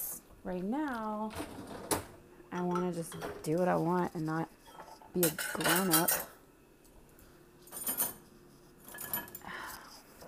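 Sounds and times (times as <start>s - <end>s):
speech: 0.4s - 1.9s, 2.5s - 4.6s, 5.2s - 6.3s
dishes and utensils clinking while being washed: 2.5s - 3.5s, 4.6s - 6.4s, 7.7s - 9.5s.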